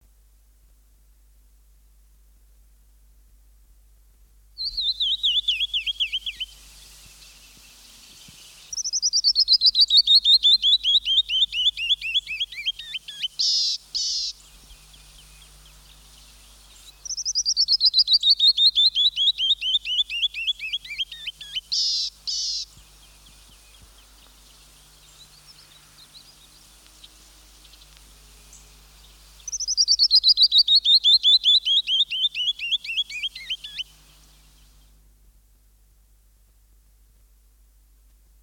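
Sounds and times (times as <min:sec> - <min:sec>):
canyon wren singing: 0:04.6 - 0:34.8
songbirds: 0:04.6 - 0:35.1.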